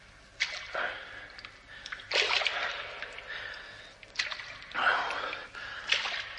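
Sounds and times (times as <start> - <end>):
slow footsteps wading through sticky foul mud and water in a dark narrow passage: 0.4 - 6.3.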